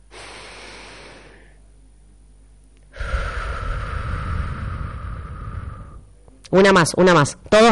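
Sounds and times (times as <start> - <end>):
group of people holding hands breathing in deeply: 0.0 - 1.6, 2.9 - 6.1
group of people holding hands exhaling: 0.0 - 1.6, 2.9 - 6.1
speech: 6.5 - 7.6.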